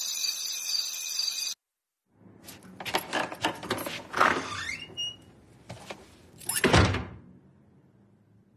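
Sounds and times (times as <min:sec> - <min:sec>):
door creaking and rattling as it swings: 0:02.2 - 0:05.4, 0:06.4 - 0:07.2
door shutting with a heavy thud: 0:06.5 - 0:07.3.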